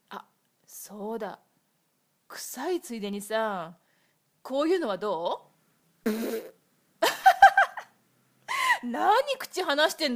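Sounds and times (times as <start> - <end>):
speech: 0.9 - 1.5, 2.3 - 3.8, 4.4 - 6.6, 8.8 - 10.1
farts: 6.0 - 6.6.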